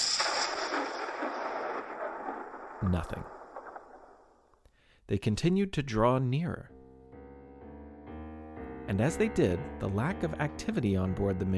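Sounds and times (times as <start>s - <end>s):
cannon fire booming: 0.0s - 4.4s
speech: 2.8s - 3.4s, 5.1s - 6.8s, 8.9s - 11.5s.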